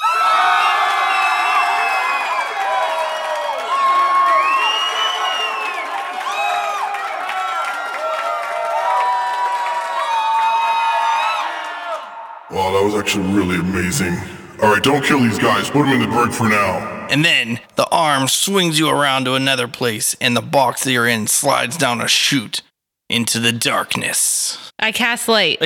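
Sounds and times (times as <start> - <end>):
crowd shouting, whooping and yelling: 0.0 - 12.4
large audience cheering raucously: 0.0 - 17.7
speech: 12.9 - 25.6.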